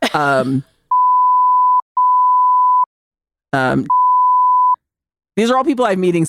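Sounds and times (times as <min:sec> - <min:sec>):
speech: 0:00.1 - 0:00.7, 0:03.5 - 0:04.0, 0:05.4 - 0:06.2
censor bleeps: 0:00.9 - 0:02.9, 0:03.6 - 0:04.8.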